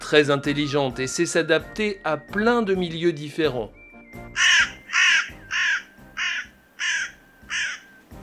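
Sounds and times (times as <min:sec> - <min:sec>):
speech: 0:00.1 - 0:04.5
carrion crow cawing: 0:04.4 - 0:08.0.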